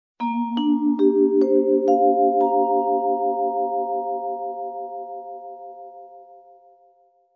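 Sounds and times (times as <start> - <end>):
jazzy vibraphone scale going up: 0.2 - 3.9.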